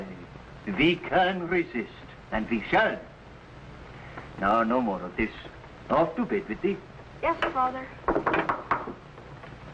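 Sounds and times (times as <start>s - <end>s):
speech: 0.7s - 3.1s, 4.4s - 8.0s
knocking on a wooden door: 8.1s - 9.0s.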